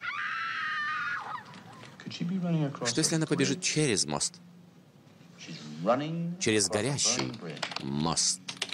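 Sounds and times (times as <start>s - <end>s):
high-pitched scream added as a background sound effect: 0.0s - 1.7s
speech: 2.2s - 4.6s, 5.8s - 8.6s.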